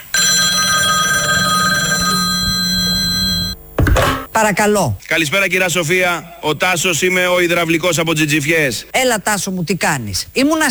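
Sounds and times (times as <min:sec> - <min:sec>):
telephone ringing with a shrill electronic tone: 0:00.0 - 0:04.4
speech: 0:04.4 - 0:10.6.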